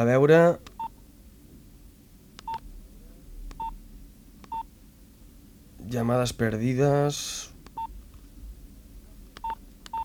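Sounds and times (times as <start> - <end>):
speech: 0.0 - 0.7, 5.9 - 7.5
low hum: 0.0 - 10.0
short electronic beeps from a small mobile phone keypad: 2.4 - 2.6, 4.5 - 4.7, 9.4 - 10.0.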